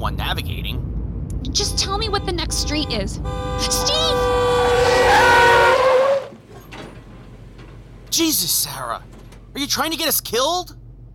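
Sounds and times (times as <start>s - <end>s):
speech: 0.0s - 0.7s, 1.5s - 4.4s, 8.2s - 11.1s
rumbling road noise: 0.0s - 11.1s
car tire screech braking hard behind a stopping truck: 2.7s - 8.2s.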